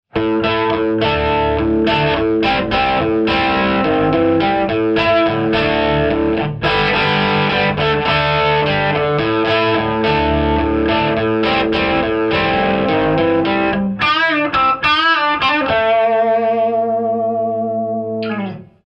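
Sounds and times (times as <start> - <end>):
guitar amplifier: 0.1 - 18.8.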